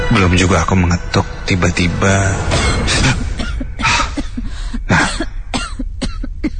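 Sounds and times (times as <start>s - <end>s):
speech: 0.1s - 3.2s
person coughing: 2.6s - 6.5s.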